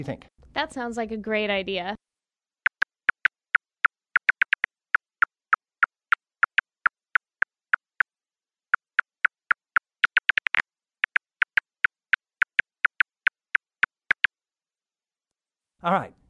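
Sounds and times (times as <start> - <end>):
speech: 0.0 - 2.0, 15.8 - 16.2
bat ultrasonic echolocation clicks made audible with a special recorder: 2.7 - 8.1, 8.8 - 14.3.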